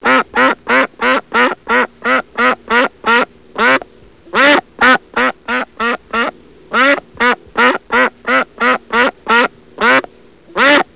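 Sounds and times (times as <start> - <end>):
duck quacking: 0.0 - 10.9.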